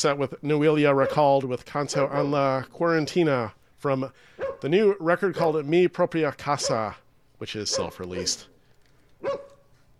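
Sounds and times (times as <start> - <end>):
speech: 0.0 - 8.5
dog barking: 0.9 - 1.3, 1.9 - 2.5, 4.3 - 4.7, 6.6 - 7.0, 7.7 - 8.5, 9.2 - 9.7.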